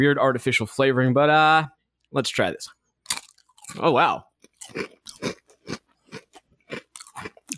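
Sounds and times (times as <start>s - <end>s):
speech: 0.0s - 2.8s, 3.7s - 5.4s
crunching of an oven-baked garlic and ranch potato chip being bitten and chewed: 3.1s - 7.5s.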